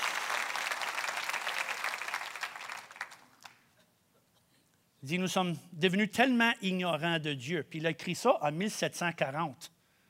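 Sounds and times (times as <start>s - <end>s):
crowd applauding: 0.0s - 3.7s
speech: 5.0s - 9.8s.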